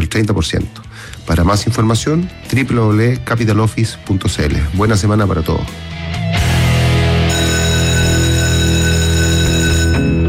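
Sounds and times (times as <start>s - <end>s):
speech: 0.2s - 5.9s
electric school bell ringing: 7.2s - 10.2s.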